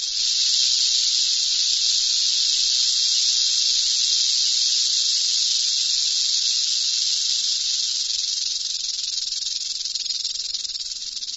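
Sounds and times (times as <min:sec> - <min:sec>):
Mojave rattlesnake rattle buzzing: 0:00.0 - 0:11.3.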